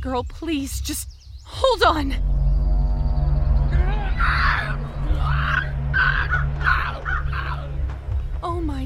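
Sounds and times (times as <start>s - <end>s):
speech: 0.0s - 2.4s
steady low droning rumble: 1.6s - 8.8s
crows cawing: 4.4s - 7.7s.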